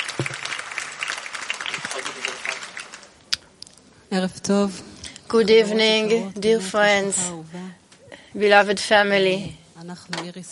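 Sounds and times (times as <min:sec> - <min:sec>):
single sharper louder clap: 0:00.0 - 0:03.2
audience applauding with many hands clapping: 0:00.0 - 0:03.3
speech: 0:04.1 - 0:07.6, 0:08.4 - 0:10.4.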